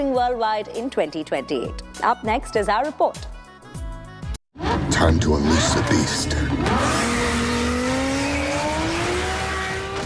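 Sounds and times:
speech: 0.0 - 3.3, 4.7 - 7.5
car engine revving: 4.6 - 10.0
tires squealing and hissing: 4.6 - 10.0.

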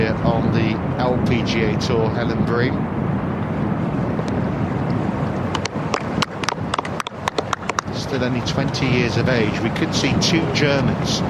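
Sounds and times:
blustery wind on a golf course buffeting the microphone: 0.0 - 11.2
speech: 1.6 - 3.1, 8.1 - 11.2
sharp clicks and taps: 5.5 - 7.9.

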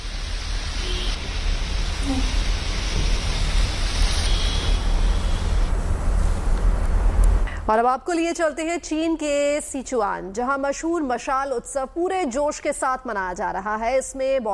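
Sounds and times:
heavy rain pouring: 0.0 - 7.7
speech: 7.7 - 14.5.

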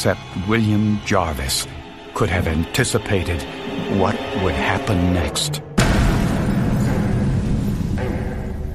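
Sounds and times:
speech: 0.0 - 5.7
package bomb explosion: 5.8 - 8.6.

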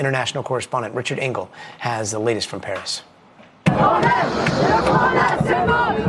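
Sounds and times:
speech: 0.0 - 3.1, 3.8 - 6.0
thousands of French student protesters shouting and chanting in Bastille Square in Paris: 3.7 - 6.0.

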